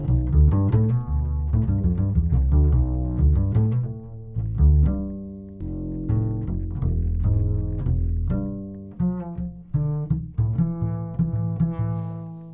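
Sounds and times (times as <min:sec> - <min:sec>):
low double bass solo: 0:00.0 - 0:12.5.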